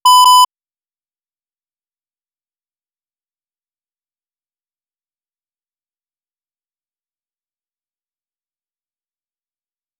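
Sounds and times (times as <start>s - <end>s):
calibration signal: 0.0s - 0.5s.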